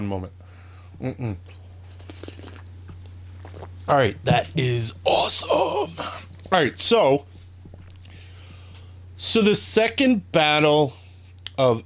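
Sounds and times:
speech: 0.0s - 1.6s, 3.9s - 7.3s, 9.2s - 11.0s, 11.6s - 11.8s
low electrical hum: 0.0s - 11.8s
slurping sips of hot coffee: 1.5s - 2.7s, 3.4s - 3.8s.

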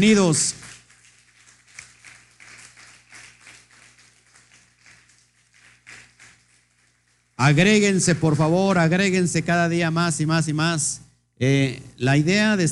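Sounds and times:
speech: 0.0s - 0.7s, 7.4s - 12.7s
small group applauding: 0.0s - 7.8s.

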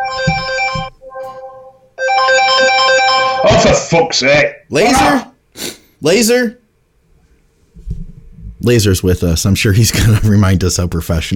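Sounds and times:
loud electronic phone ringtone melody: 0.0s - 3.7s
speech: 3.6s - 5.3s, 6.0s - 6.6s, 8.6s - 11.3s.

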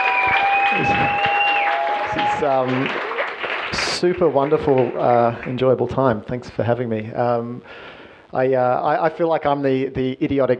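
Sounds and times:
long high whistles: 0.0s - 2.6s
person cheering: 0.0s - 3.0s
audience applauding: 0.0s - 5.9s
speech: 2.4s - 3.1s, 3.7s - 10.5s.

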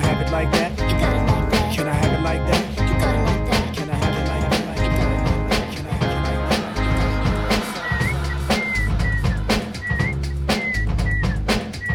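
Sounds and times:
loud steady music track with punchy drums and heavy bass: 0.0s - 11.9s
speech: 0.4s - 0.8s
bright whistled melody: 6.8s - 11.9s.

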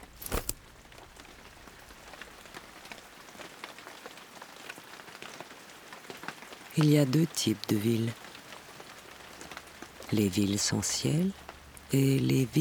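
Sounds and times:
rain pattering on a hard surface: 0.0s - 12.5s
speech: 6.8s - 8.2s, 10.1s - 12.5s.

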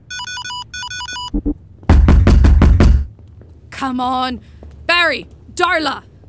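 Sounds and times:
short electronic beeping tune of a door code lock: 0.1s - 1.5s
knocking on a door: 1.9s - 3.1s
speech: 3.8s - 6.1s.

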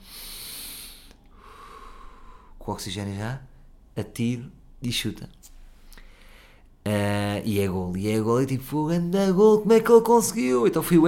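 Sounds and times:
deep breath taken before a shot: 0.0s - 2.6s, 5.6s - 6.8s
speech: 2.6s - 5.4s, 6.9s - 11.0s.

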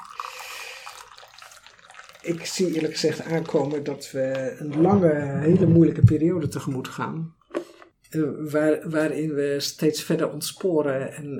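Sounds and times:
tea pouring into a cup: 0.0s - 5.8s
speech: 2.2s - 7.4s, 8.1s - 11.3s.

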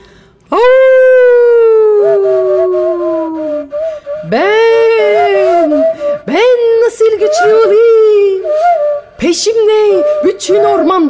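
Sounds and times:
wolf howling: 0.7s - 6.2s
speech: 4.3s - 4.5s, 6.3s - 11.0s.

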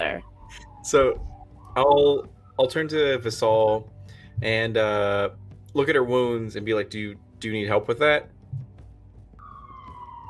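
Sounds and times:
emergency vehicle siren wailing: 0.0s - 3.8s, 9.3s - 10.2s
speech: 0.0s - 8.4s
low rumbling background: 0.0s - 9.4s.

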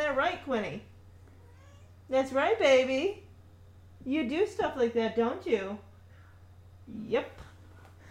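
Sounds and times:
steady low hum: 0.0s - 8.0s
speech: 0.2s - 0.9s, 2.1s - 3.3s, 4.0s - 5.9s, 6.9s - 7.4s
female cat meowing softly in reply: 1.4s - 2.0s.

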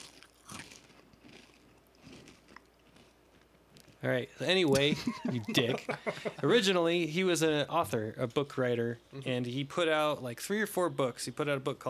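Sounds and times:
potato chips being chewed: 0.0s - 4.0s
speech: 4.0s - 11.8s
laughter: 4.7s - 6.8s.

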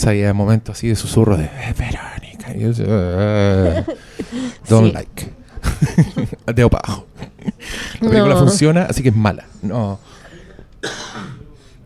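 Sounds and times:
speech: 0.0s - 10.2s, 10.8s - 11.3s
laughter: 3.2s - 4.8s, 5.6s - 8.6s
sharp allergic cough into microphone: 10.4s - 11.6s.

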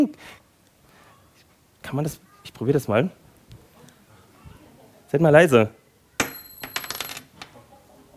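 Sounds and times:
speech: 0.0s - 0.4s, 1.8s - 3.2s, 5.1s - 5.8s
small metal engagement ring dropping onto a wooden table: 6.2s - 7.5s.

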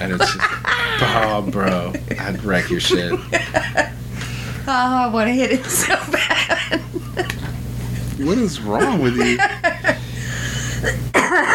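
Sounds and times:
speech: 0.0s - 3.9s, 4.7s - 7.3s, 8.2s - 9.7s
laughter: 0.0s - 4.0s, 5.3s - 7.5s, 8.2s - 10.9s
person coughing: 10.8s - 11.5s.

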